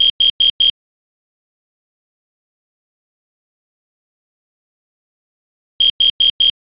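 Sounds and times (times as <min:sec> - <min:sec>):
CO detector temporal four-tone alarm: 0:00.0 - 0:00.8, 0:05.8 - 0:06.6.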